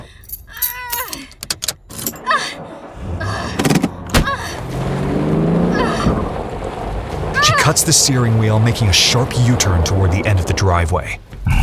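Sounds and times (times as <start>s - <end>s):
metallic keys jangling on a deputy's key ring: 0.0s - 2.3s
police car engine turning over and starting: 2.1s - 11.2s
speech: 7.7s - 11.2s.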